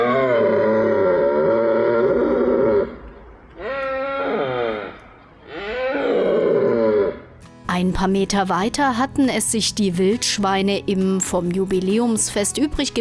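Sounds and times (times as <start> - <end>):
red deer stags bellowing in rut: 0.0 - 7.3
speech: 8.0 - 12.9.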